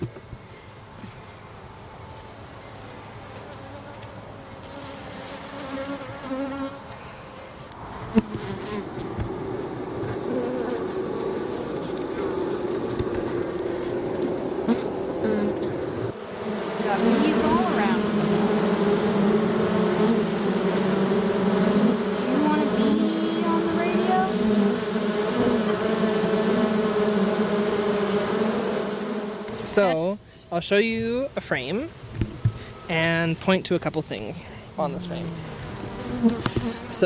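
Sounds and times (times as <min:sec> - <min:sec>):
honeybees buzzing inside a beehive: 0:03.2 - 0:07.0, 0:07.9 - 0:30.1, 0:34.8 - 0:37.0
speech: 0:29.8 - 0:32.0, 0:32.9 - 0:35.6, 0:36.2 - 0:37.0.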